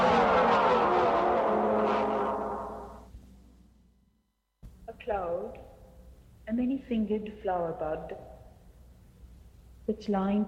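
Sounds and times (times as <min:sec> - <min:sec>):
car driving by with engine roar and tyre rumble: 0:00.0 - 0:03.1
speech: 0:06.5 - 0:08.3, 0:09.9 - 0:10.4.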